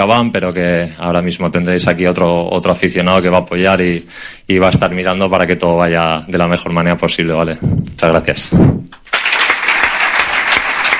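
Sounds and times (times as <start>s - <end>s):
speech: 0.0s - 9.0s
applause after an emotional farewell speech: 9.0s - 10.9s.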